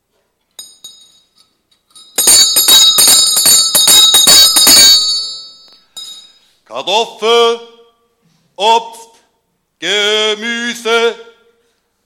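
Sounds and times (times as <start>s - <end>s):
handheld bell shaken rapidly and loudly: 0.6s - 6.6s
speech: 6.8s - 7.7s, 8.6s - 9.0s, 9.8s - 11.3s.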